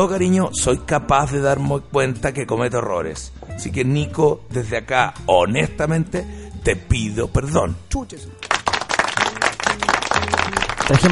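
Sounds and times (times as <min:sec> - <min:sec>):
speech: 0:00.0 - 0:08.5, 0:10.9 - 0:11.1
group of people clapping: 0:08.4 - 0:11.1.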